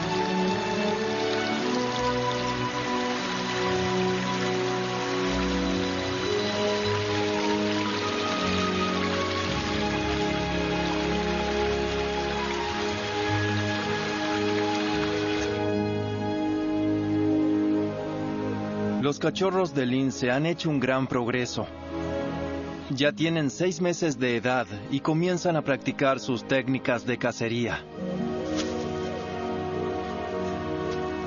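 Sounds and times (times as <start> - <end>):
heavy rain falling on a jungle: 0.0 - 16.8
sustained musical tones: 0.0 - 31.2
speech: 19.1 - 22.1, 22.9 - 28.1.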